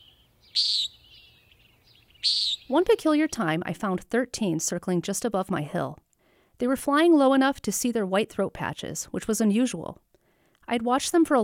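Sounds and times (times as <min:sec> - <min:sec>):
Common Nighthawk peent call from high overhead: 0:00.0 - 0:01.3, 0:02.2 - 0:02.7
speech: 0:02.7 - 0:06.0, 0:06.6 - 0:10.1, 0:10.7 - 0:11.4.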